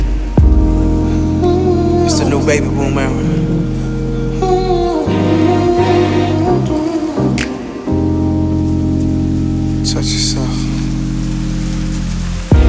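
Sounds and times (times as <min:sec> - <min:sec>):
deep thundery rumble: 0:00.0 - 0:12.6
heavy rain pouring: 0:00.0 - 0:12.6
sustained musical tones: 0:00.4 - 0:12.6
speech: 0:02.4 - 0:03.7, 0:10.0 - 0:10.6.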